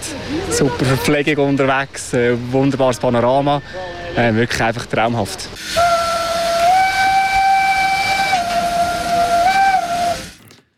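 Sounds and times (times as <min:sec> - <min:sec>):
speech: 0:00.3 - 0:05.9
steam locomotive whistle blast: 0:05.6 - 0:10.4.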